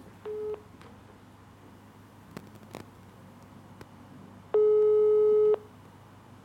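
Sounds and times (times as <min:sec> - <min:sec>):
telephone ringback tone over a call line: 0:00.3 - 0:00.6, 0:04.6 - 0:05.6.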